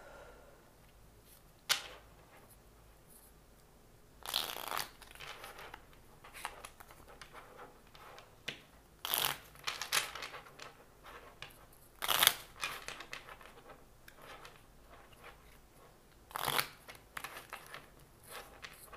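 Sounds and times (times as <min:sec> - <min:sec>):
tarot cards being shuffled: 0:04.2 - 0:15.7, 0:16.3 - 0:18.9.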